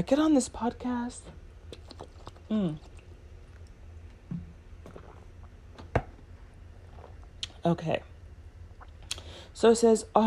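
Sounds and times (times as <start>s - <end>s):
speech: 0.0s - 2.9s, 7.6s - 8.1s, 9.6s - 10.2s
person taking a swig of water: 1.7s - 5.9s, 6.8s - 7.6s.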